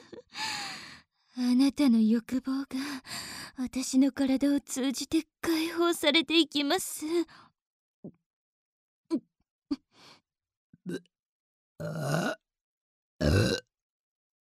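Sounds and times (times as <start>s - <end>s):
speech: 1.4s - 7.4s, 9.1s - 9.3s, 10.8s - 11.1s, 11.8s - 12.4s
person burping: 11.8s - 12.4s, 13.2s - 13.7s.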